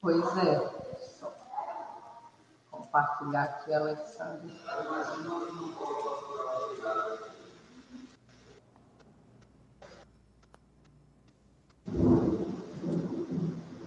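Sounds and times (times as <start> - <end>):
speech: 0.0 - 1.3, 2.9 - 7.2
voices murmuring: 0.0 - 8.2
thunder rumbling: 11.9 - 13.8.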